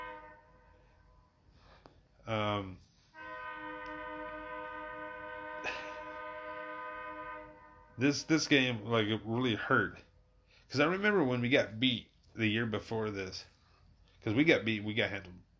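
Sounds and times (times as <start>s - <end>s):
train horn blaring: 0.0s - 1.7s, 3.1s - 8.8s
speech: 2.3s - 2.9s, 8.0s - 10.1s, 10.7s - 13.5s, 14.2s - 15.4s.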